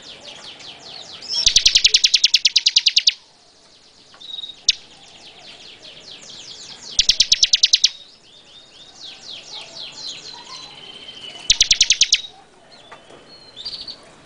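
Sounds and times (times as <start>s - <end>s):
Bar-winged prinia song of fast stuttering high notes: 0.0s - 14.0s
squeaky twittering phrases of Bar-winged prinia: 1.4s - 3.3s, 6.9s - 8.1s, 9.9s - 12.4s.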